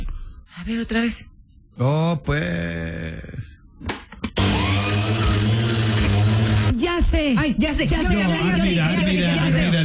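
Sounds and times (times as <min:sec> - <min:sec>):
speech: 0:00.6 - 0:03.5, 0:07.0 - 0:09.8
electric blender running: 0:04.4 - 0:06.8.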